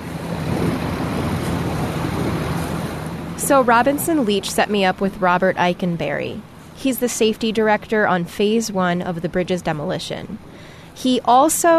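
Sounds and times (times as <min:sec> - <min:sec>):
wind buffeting the microphone: 0:00.0 - 0:05.6
boat motor droning beneath a bridge: 0:00.0 - 0:11.7
rushing water: 0:00.0 - 0:11.7
speech: 0:03.5 - 0:11.7.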